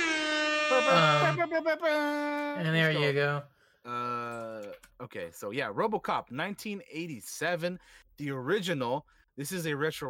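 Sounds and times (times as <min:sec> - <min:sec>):
loud blaring air horn blast: 0:00.0 - 0:01.4
speech: 0:00.7 - 0:10.0.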